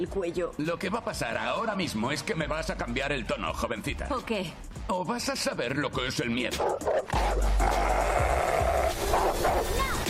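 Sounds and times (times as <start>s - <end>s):
speech: 0.0s - 8.2s, 9.1s - 10.0s
dog barking and snarling aggressively while attacking: 6.6s - 10.0s.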